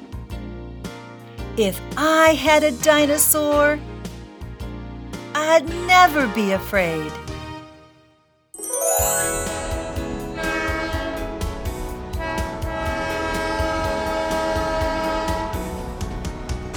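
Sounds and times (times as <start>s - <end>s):
speech: 1.6s - 3.9s, 5.4s - 7.2s
train horn blaring in one long sustained chord: 9.6s - 15.9s
rail cars rumbling and rattling: 10.4s - 16.7s.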